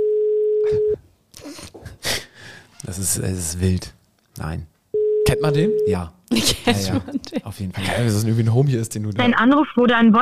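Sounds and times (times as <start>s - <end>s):
telephone ringing tone of an outgoing call: 0.0s - 1.0s, 5.0s - 5.9s
speech: 2.9s - 4.7s, 5.3s - 10.2s.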